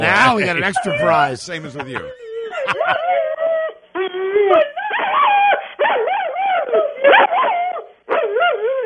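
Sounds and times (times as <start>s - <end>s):
speech: 0.0s - 3.0s
laughter: 0.1s - 3.3s
Rottweiler howling and singing: 2.1s - 8.8s.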